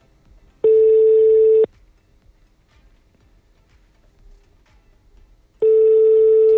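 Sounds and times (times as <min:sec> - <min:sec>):
steady telephone tones of a call not connecting: 0:00.6 - 0:01.7, 0:05.6 - 0:06.5.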